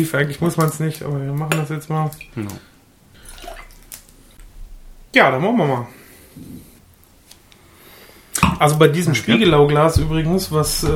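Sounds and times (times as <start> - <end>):
speech: 0.0 - 2.7, 5.2 - 6.6, 8.4 - 10.9
faint hum: 0.0 - 10.9
water pouring into a glass: 3.2 - 4.0.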